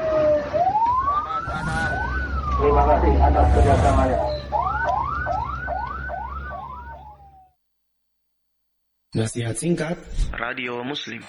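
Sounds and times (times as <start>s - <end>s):
low rumble of traffic noise: 0.0s - 7.4s
ambulance siren wailing: 0.0s - 7.6s
speech: 2.6s - 4.4s, 9.2s - 11.2s.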